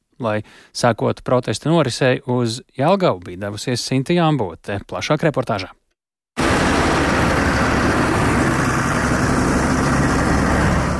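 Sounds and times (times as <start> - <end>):
speech: 0.2 - 5.8
tractors in a slow farmers' protest column on a road: 6.4 - 10.9.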